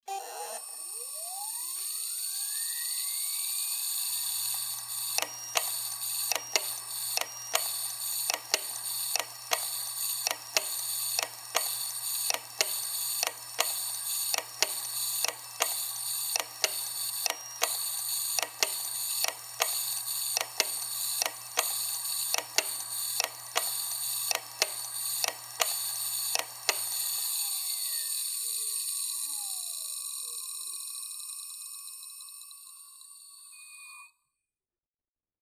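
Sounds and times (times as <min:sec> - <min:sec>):
Seagate ST31000528AS hard drive grinding: 0:04.2 - 0:28.6.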